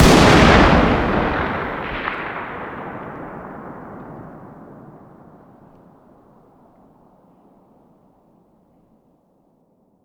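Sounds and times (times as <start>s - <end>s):
distant .338 Lapua Magnum rifle shot outdoors: 0.0s - 6.0s.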